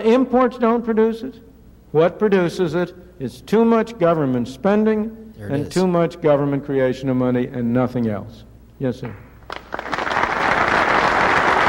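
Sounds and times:
speech: 0.0 - 9.2
crowd applauding: 9.5 - 11.6.

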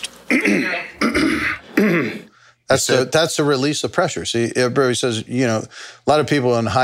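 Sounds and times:
person clearing throat: 0.3 - 2.3
person coughing nervously: 0.3 - 2.3
speech: 1.9 - 6.8.

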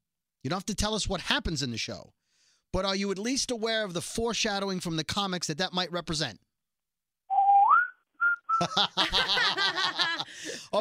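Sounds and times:
speech: 0.4 - 6.5, 8.6 - 10.7
person whistling warbling trills: 7.3 - 8.7
laughter: 8.6 - 10.7.

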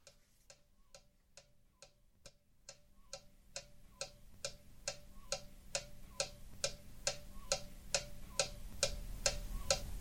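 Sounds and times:
wall clock ticking: 0.0 - 9.9.

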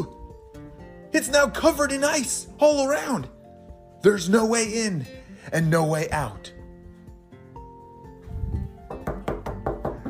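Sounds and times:
music playing: 0.0 - 10.0
speech: 1.1 - 3.4, 4.0 - 6.6
forceful knocks on doors from someone locked inside: 8.9 - 10.0.

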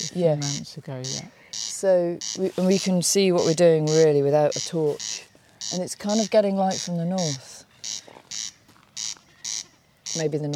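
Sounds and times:
snipe drumming with its wings in a display flight: 0.0 - 7.3
speech: 0.0 - 8.0, 10.2 - 10.5.

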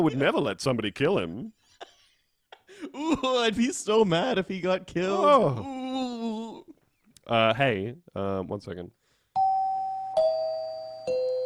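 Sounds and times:
speech: 0.0 - 1.9, 2.8 - 6.3, 7.3 - 9.0
doorbell-style ding-dong chime with descending notes: 9.4 - 11.4.

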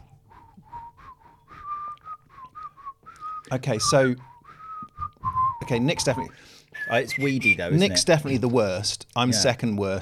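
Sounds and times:
person whistling a short wavering tune: 0.4 - 7.7
speech: 3.5 - 4.3, 5.7 - 10.0.

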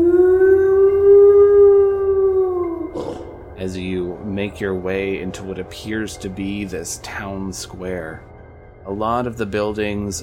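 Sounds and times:
long sustained eerie echoey howl: 0.0 - 3.6
speech: 4.4 - 8.3, 8.9 - 10.2.

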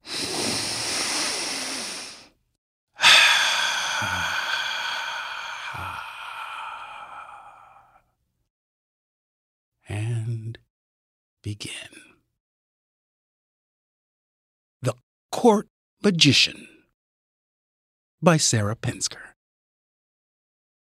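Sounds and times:
drawn-out voiced sigh: 0.0 - 2.3, 3.0 - 8.0
person taking a deep breath: 0.0 - 2.4, 3.0 - 8.0
speech: 11.5 - 11.9, 15.4 - 16.7, 18.2 - 19.3.

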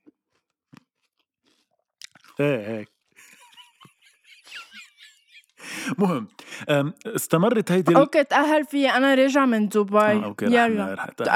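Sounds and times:
crisp crunching of food chewed with an open mouth for ASMR: 0.0 - 3.2
speech: 2.4 - 2.9, 5.9 - 11.3
laughter: 2.4 - 6.9, 7.5 - 8.1, 10.1 - 11.3.

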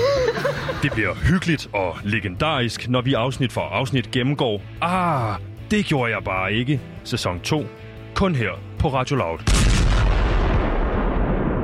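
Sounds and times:
laughter: 0.0 - 1.4
speech: 0.8 - 9.8
loud explosion with deep rumbling roar and low boom: 9.5 - 11.6.

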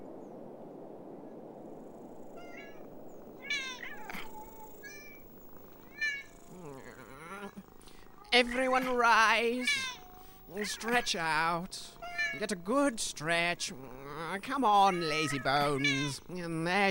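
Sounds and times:
low hiss: 0.0 - 16.8
cat yowling: 2.4 - 2.8, 3.4 - 12.6, 14.7 - 16.3
cats meowing: 2.4 - 16.8
speech: 8.4 - 9.7, 10.6 - 16.8.

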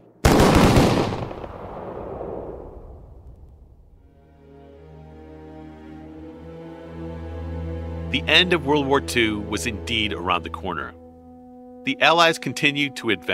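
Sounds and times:
firing squad gunfire volley: 0.2 - 2.8
steady droning tone: 7.0 - 13.3
speech: 8.1 - 11.0, 11.9 - 13.3.

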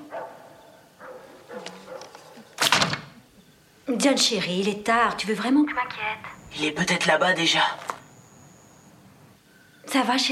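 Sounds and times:
dog barking: 0.0 - 2.5
speech: 3.9 - 7.8, 10.0 - 10.2.

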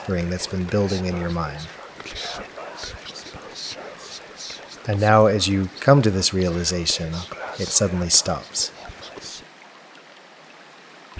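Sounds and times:
speech: 0.0 - 3.0, 4.8 - 8.8
rushing water from a waterfall: 0.0 - 9.5.

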